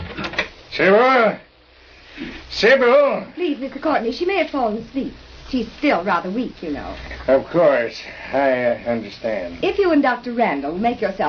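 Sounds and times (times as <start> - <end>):
front door hinges creaking: 0.0 - 0.5
speech: 0.7 - 1.5, 2.2 - 11.2.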